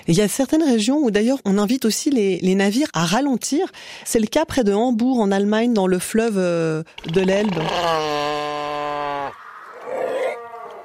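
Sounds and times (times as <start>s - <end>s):
speech: 0.0s - 8.4s
seal low drawn-out moan: 7.5s - 10.8s.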